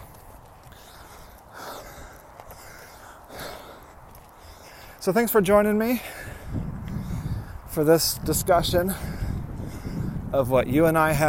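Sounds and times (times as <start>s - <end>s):
outdoor noise: 0.0s - 11.2s
heavy labored breathing while walking uphill: 0.1s - 5.1s, 5.8s - 7.7s, 8.8s - 10.3s
speech: 5.0s - 6.3s, 7.8s - 9.1s, 10.3s - 11.2s.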